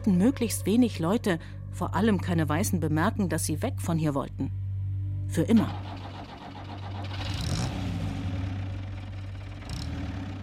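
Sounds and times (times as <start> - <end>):
speech: 0.0 - 4.6, 5.3 - 6.0
truck engine starting and pulling away along a dusty road: 5.6 - 10.4.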